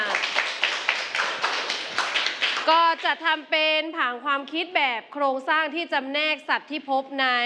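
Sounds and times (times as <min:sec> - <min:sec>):
steady rhythmic clapping from a small group in a class: 0:00.0 - 0:03.3
speech: 0:02.6 - 0:07.4.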